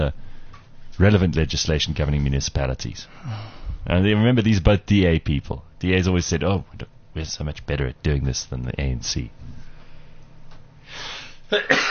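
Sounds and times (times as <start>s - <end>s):
speech: 0.0s - 0.2s, 1.0s - 9.6s, 10.9s - 11.8s
person sneezing: 11.0s - 11.8s.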